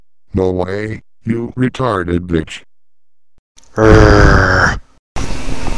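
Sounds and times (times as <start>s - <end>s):
speech: 0.4s - 2.7s, 3.8s - 4.8s
person yelling: 3.8s - 4.8s.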